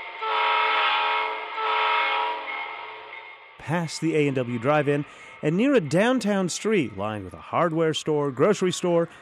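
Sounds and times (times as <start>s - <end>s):
home-built model train whistle blasts: 0.0s - 3.1s
speech: 3.7s - 9.2s.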